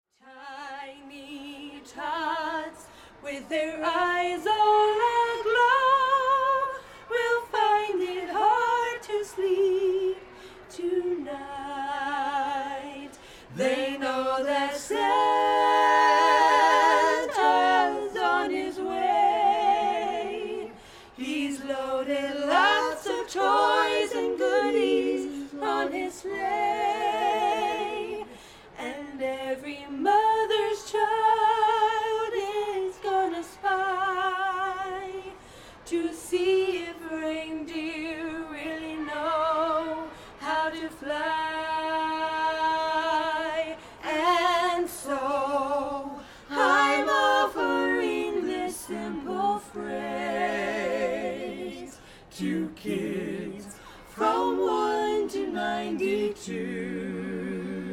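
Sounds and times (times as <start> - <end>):
carolers singing a Christmas song: 0.3 - 57.9.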